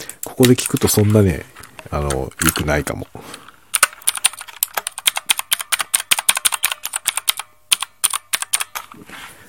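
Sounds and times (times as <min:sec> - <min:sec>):
clicky mechanical computer keyboard typing: 0:00.2 - 0:01.3, 0:02.0 - 0:03.0, 0:03.7 - 0:09.0
speech: 0:00.4 - 0:03.4.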